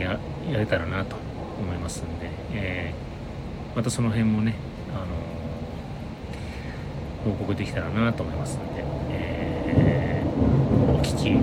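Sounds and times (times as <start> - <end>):
speech: 0.0 - 3.1, 3.7 - 5.4, 7.2 - 11.4
train running with a low rumble: 0.0 - 11.4.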